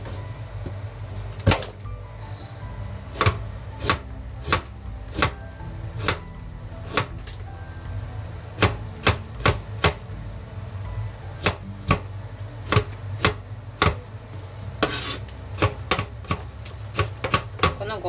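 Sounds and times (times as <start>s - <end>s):
low steady hum: 0.0s - 18.0s
knife chopping burdock root on a cutting board: 3.1s - 5.4s, 12.6s - 14.0s, 14.8s - 17.8s.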